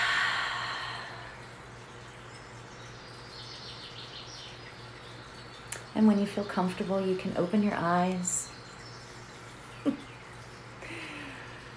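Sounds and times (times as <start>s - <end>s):
long deep exhale during a guided meditation: 0.0s - 1.4s
speech: 6.0s - 8.3s.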